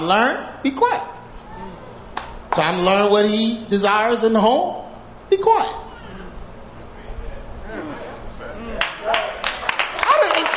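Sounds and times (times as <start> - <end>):
speech: 0.0 - 1.1, 2.6 - 5.8
audience clapping: 8.8 - 10.5.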